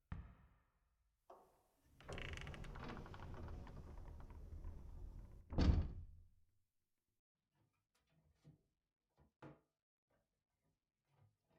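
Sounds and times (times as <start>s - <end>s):
storage room sliding door rumbling in a school gymnasium: 2.1s - 5.7s.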